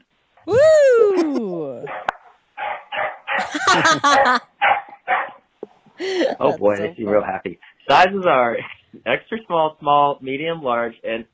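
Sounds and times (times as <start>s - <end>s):
speech: 0.4s - 2.0s, 3.8s - 4.5s, 6.0s - 11.3s
dogs barking and yelping: 1.9s - 5.4s
laughter: 3.4s - 4.4s, 6.0s - 6.8s.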